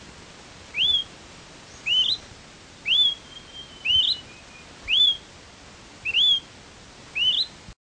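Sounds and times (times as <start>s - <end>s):
faint background hiss: 0.0s - 7.8s
Smoke-colored Pewee Contopus fumigatus zarumae giving upslurred whistles: 0.7s - 1.1s, 1.8s - 2.2s, 2.8s - 5.2s, 6.0s - 6.5s, 7.2s - 7.5s.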